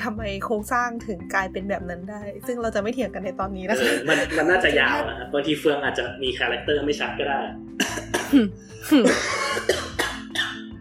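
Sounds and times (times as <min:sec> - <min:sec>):
speech: 0:00.0 - 0:09.8
laughter: 0:03.7 - 0:05.3
person imitating harsh coughing: 0:07.8 - 0:10.7.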